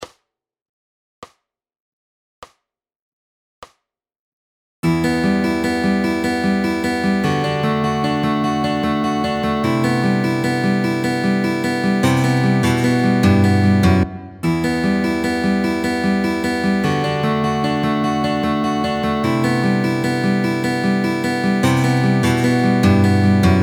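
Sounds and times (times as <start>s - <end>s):
fingerpicking both parts: 4.8s - 23.6s.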